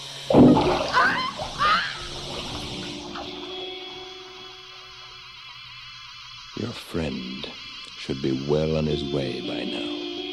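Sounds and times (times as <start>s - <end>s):
water splashing and sloshing during a struggle: 0.3s - 5.9s
strained vocal cries: 0.8s - 2.2s
speech: 8.2s - 9.9s.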